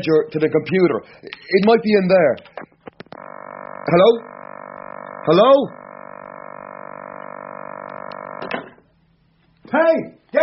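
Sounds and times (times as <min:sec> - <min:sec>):
speech: 0:00.0 - 0:02.7, 0:03.9 - 0:04.3, 0:05.2 - 0:05.8, 0:09.9 - 0:10.4
telephone dial tone after the caller hangs up: 0:02.6 - 0:08.7.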